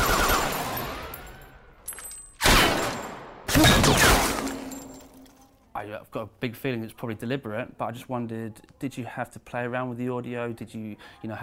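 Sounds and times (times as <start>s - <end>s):
heavy gunfire from a film firefight: 2.4s - 4.6s
speech: 5.8s - 11.4s.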